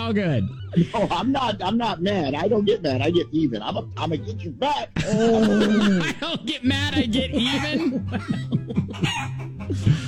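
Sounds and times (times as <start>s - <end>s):
speech: 0.1s - 10.0s
laughter: 0.2s - 10.0s
chickens clucking as they run around a barnyard: 8.9s - 9.7s.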